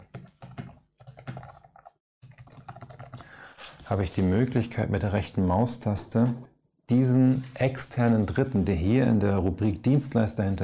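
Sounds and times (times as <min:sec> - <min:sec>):
typing an email address on a computer keyboard: 0:00.0 - 0:03.3
speech: 0:03.9 - 0:10.6.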